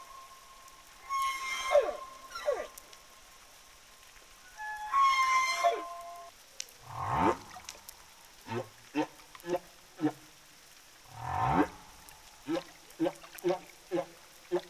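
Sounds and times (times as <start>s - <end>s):
humpback whale tonal notes: 0.0s - 3.0s, 4.4s - 7.7s, 11.1s - 14.6s
humpback whale sweeping growl: 6.8s - 7.7s, 8.5s - 10.2s, 11.1s - 14.6s.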